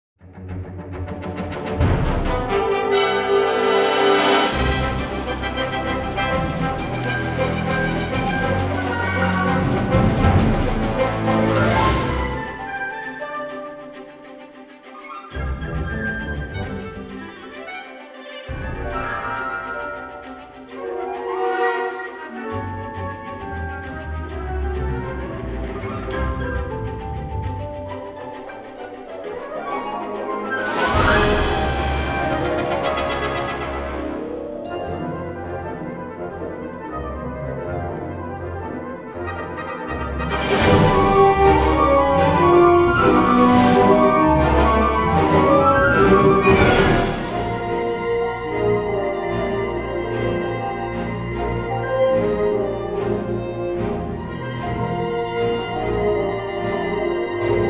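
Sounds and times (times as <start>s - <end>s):
woodwind ensemble playing: 1.3s - 57.6s.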